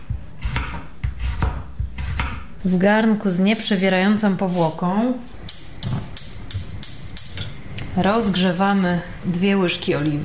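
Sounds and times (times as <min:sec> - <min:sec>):
knife slicing a large peeled garlic clove into thin slices: 0:00.1 - 0:02.5
speech: 0:02.6 - 0:05.4, 0:08.0 - 0:10.2.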